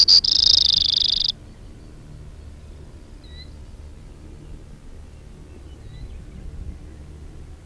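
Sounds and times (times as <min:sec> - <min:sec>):
faint Brewer's sparrow chips: 0:00.0 - 0:01.4
Brewer's sparrow song with quick high notes and buzzy trill: 0:00.0 - 0:03.6, 0:04.2 - 0:07.4.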